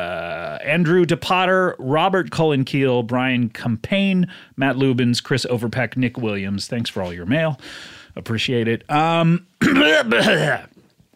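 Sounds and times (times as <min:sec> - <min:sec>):
speech: 0:00.6 - 0:10.7
man clearing throat: 0:09.6 - 0:10.8.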